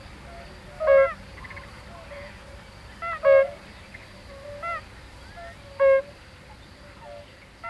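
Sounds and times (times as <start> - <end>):
soft steady hiss: 0.0 - 7.6
European fire-bellied toad calls: 0.2 - 7.6.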